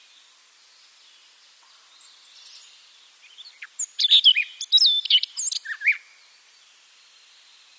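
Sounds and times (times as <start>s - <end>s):
Siberian rubythroat song: 2.0s - 6.3s.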